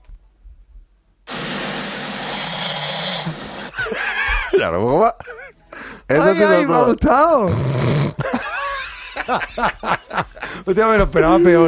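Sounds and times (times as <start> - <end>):
harsh snore: 1.3 - 3.8, 7.4 - 8.2
laughter: 3.4 - 7.0, 8.2 - 11.6
speech: 4.6 - 5.4, 6.1 - 8.4, 9.3 - 11.6.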